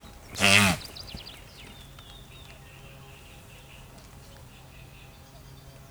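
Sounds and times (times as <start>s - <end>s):
guanaco call: 0.0s - 4.0s.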